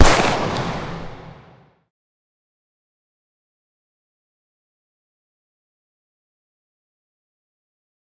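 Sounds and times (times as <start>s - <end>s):
distant gunshots from a 357 and a Glock: 0.0s - 1.6s.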